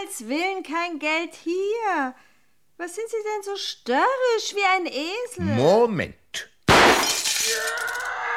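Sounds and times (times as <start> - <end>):
speech: 0.1 - 8.2
window glass shattering from a gunshot: 6.7 - 8.1.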